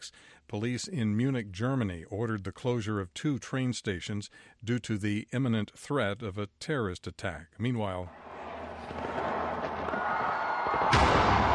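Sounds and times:
speech: 0.1 - 8.2
fireworks bursts rumbling and crackling at a New Year celebration in Sydney: 8.2 - 11.5.

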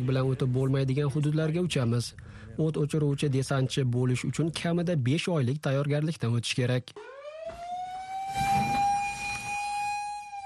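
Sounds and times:
speech: 0.0 - 7.6
fire station alarm siren at a smokejumper firefighting base wailing: 7.0 - 10.4.

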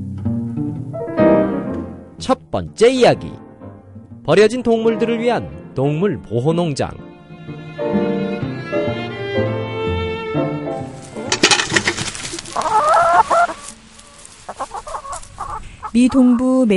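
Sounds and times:
soft tonal musical passage: 0.0 - 14.5
speech: 2.2 - 3.4, 4.2 - 7.0, 16.0 - 16.7
flock of chickens clucking in a backyard: 10.9 - 16.7.

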